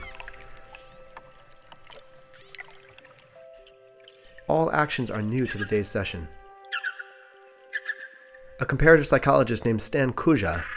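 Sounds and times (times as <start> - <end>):
trained dolphins whistling underwater recorded with a hydrophone: 0.0 - 1.1, 7.7 - 8.3
speech: 4.5 - 6.4, 8.6 - 10.7.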